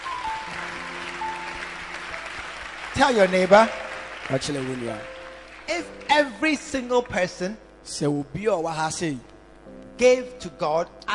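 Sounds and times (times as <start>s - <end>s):
church congregation clapping hands: 0.0s - 7.4s
speech: 3.0s - 5.1s, 5.7s - 11.1s.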